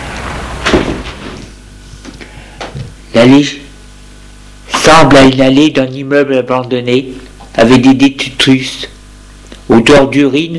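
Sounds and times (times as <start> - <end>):
door closing at the entrance of an old apartment building: 0.2 - 1.5
speech: 3.2 - 3.7, 4.9 - 8.9, 9.7 - 10.5.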